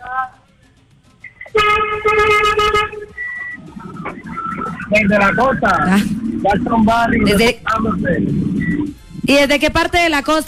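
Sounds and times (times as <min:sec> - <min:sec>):
car horn honking: 0:01.5 - 0:03.2
speech: 0:05.0 - 0:08.7, 0:09.3 - 0:10.4.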